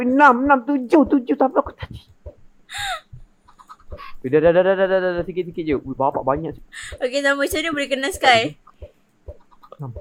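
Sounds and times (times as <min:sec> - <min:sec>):
speech: 0:00.0 - 0:02.1, 0:04.0 - 0:08.9, 0:09.8 - 0:09.9
dull low thumps: 0:00.2 - 0:09.9
loose chicken squawking and clucking: 0:03.5 - 0:04.0.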